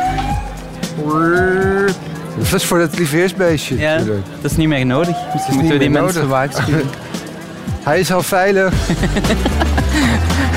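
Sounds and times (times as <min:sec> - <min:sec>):
ambulance siren wailing past: 0:00.0 - 0:00.8, 0:04.9 - 0:06.3
speech: 0:01.0 - 0:01.6, 0:02.4 - 0:07.0, 0:07.8 - 0:10.3
laughter: 0:05.5 - 0:07.4, 0:08.7 - 0:10.5.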